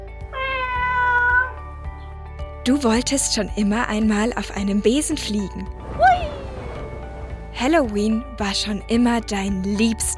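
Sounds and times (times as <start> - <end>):
cat meowing: 0.3 - 1.6
speech: 2.6 - 6.2, 7.6 - 10.1.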